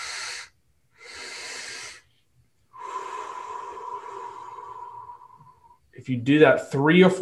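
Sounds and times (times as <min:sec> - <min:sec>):
long breathy exhale through the mouth with a faint whistling tone: 0:00.0 - 0:02.1, 0:02.7 - 0:05.8
sharp airy inhales through the nose in a breathing exercise: 0:00.0 - 0:02.2, 0:02.8 - 0:05.8
speech: 0:06.0 - 0:07.2.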